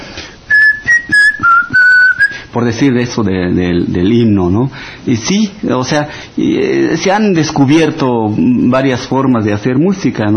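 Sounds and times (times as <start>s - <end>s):
person whistling a tune with the mouth alone: 0.5s - 2.5s
speech: 2.6s - 10.3s.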